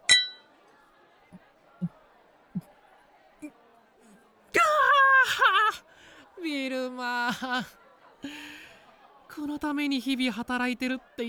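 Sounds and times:
glasses clinking in a toast: 0:00.0 - 0:00.5
low murmur of chatter: 0:00.0 - 0:11.2
speech: 0:06.5 - 0:07.8, 0:09.4 - 0:11.2.

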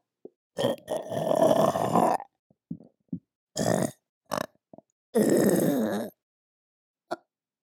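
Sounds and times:
loud drawn-out burp: 0:00.6 - 0:02.3, 0:03.6 - 0:04.6, 0:05.2 - 0:06.2.

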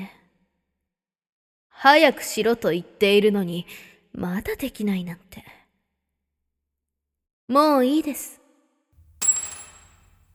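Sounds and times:
speech: 0:01.8 - 0:05.6, 0:07.5 - 0:08.4
dropped key hitting a hard surface: 0:09.0 - 0:10.3.

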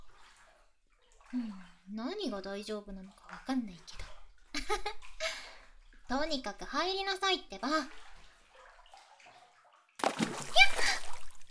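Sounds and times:
speech: 0:01.3 - 0:05.2, 0:06.1 - 0:08.1
splash of someone jumping into water: 0:10.0 - 0:11.5.

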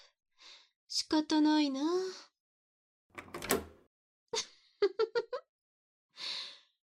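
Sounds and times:
speech: 0:00.9 - 0:02.3
door lock rattling thud: 0:03.2 - 0:03.8.

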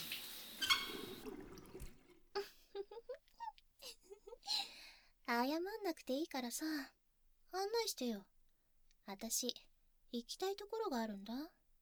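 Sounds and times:
shower water running: 0:00.0 - 0:02.2
speech: 0:05.3 - 0:08.3, 0:09.1 - 0:11.6.

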